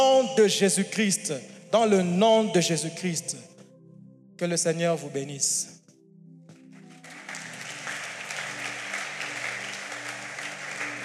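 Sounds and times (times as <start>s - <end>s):
speech: 0.2s - 3.5s, 4.4s - 5.8s
church congregation applauding after a sermon: 6.7s - 11.0s.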